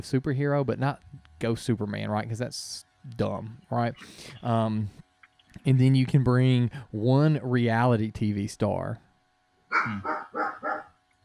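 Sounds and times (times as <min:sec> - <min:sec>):
speech: 0:00.0 - 0:05.0, 0:05.6 - 0:09.0, 0:09.8 - 0:10.5
dogs barking: 0:09.7 - 0:11.0.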